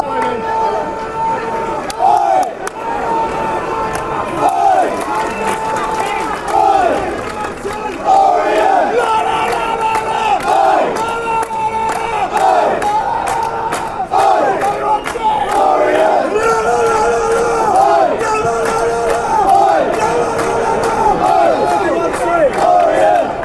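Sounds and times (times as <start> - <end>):
football fans chanting: 0.0 - 23.4.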